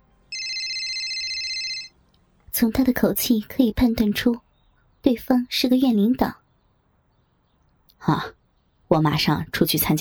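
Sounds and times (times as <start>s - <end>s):
mobile phone ringing: 0.3s - 2.0s
speech: 2.6s - 4.4s, 5.1s - 6.4s, 8.0s - 10.0s.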